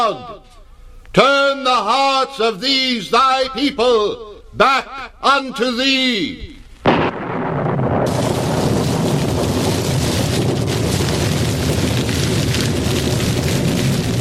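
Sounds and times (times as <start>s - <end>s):
speech: 0.0s - 6.6s
sudden loud burst: 6.8s - 14.2s.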